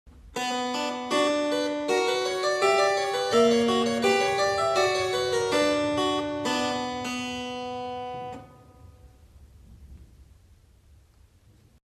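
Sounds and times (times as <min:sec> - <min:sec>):
montagem-style harpsichord music: 0:00.4 - 0:09.0.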